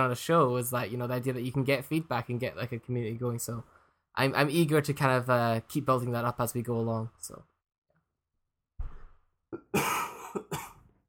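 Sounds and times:
speech: 0.0s - 7.5s
person coughing harshly: 9.6s - 10.9s.

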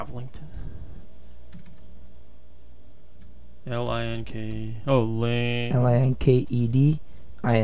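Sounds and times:
speech: 0.0s - 0.9s, 3.6s - 7.6s
steady low hum: 0.0s - 7.6s
typing on a computer keyboard: 1.5s - 1.8s.

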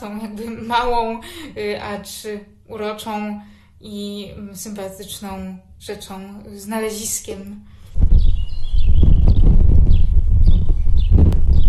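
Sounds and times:
speech: 0.0s - 8.3s
heavy low rumble: 8.0s - 11.6s
house sparrow chirping near a clinic in Radom Poland: 8.1s - 11.6s.

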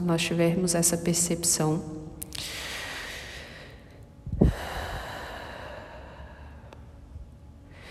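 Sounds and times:
speech: 0.0s - 2.6s
long deep breath: 2.4s - 6.8s.

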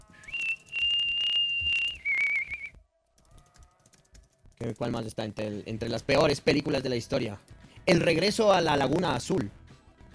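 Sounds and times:
person whistling a high note and a wavering lower note: 0.0s - 2.8s
speech: 4.6s - 9.6s.

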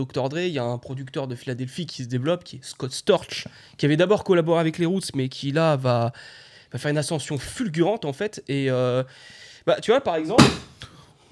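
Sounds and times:
speech: 0.0s - 10.8s
chair breaking with a dull crack: 10.2s - 10.8s
object falling with a faint knock: 10.3s - 10.8s.

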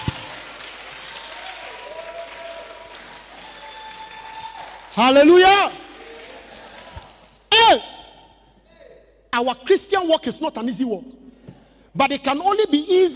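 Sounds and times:
audience clapping and applauding: 0.0s - 7.5s
speech: 5.0s - 5.8s, 9.4s - 11.2s, 12.0s - 13.1s
single voice shouting: 7.5s - 8.3s.

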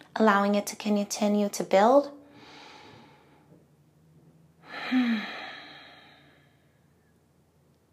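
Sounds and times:
speech: 0.2s - 2.2s
slow even breathing in a yoga class: 2.2s - 3.6s, 4.6s - 6.9s.

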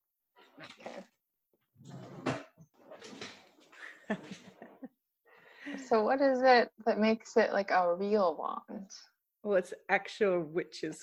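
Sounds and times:
drawer sliding open with scraping and rattling: 1.8s - 3.6s
speech: 5.9s - 11.0s.

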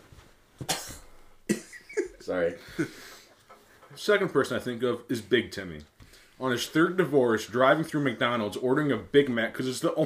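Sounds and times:
person coughing sharply: 0.6s - 2.2s
speech: 2.3s - 3.2s, 3.9s - 10.0s.

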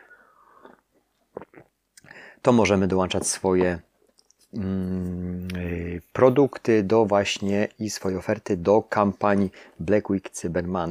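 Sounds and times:
person sipping coffee: 0.3s - 2.1s
swallow: 0.5s - 1.7s
speech: 2.4s - 3.9s, 4.5s - 5.2s, 6.2s - 10.8s.

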